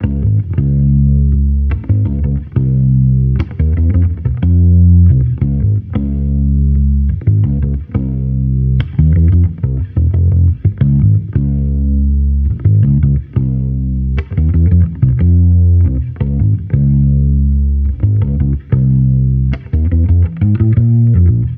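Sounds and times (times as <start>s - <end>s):
amped electric bass loop in F minor: 0.0s - 21.5s.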